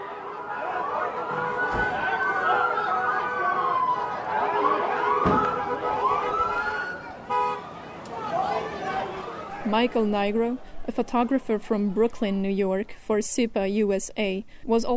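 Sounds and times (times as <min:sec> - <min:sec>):
police van, police car and ambulance sirens wailing: 0:00.0 - 0:10.4
crowd chatter on a busy street: 0:00.0 - 0:13.0
sharp bangs or toots: 0:04.6 - 0:07.6
speech: 0:09.7 - 0:14.9.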